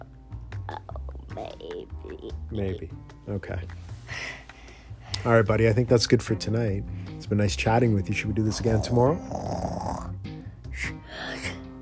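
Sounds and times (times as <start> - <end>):
speech: 1.4 - 4.4, 5.2 - 9.8
child yawning: 10.8 - 11.7.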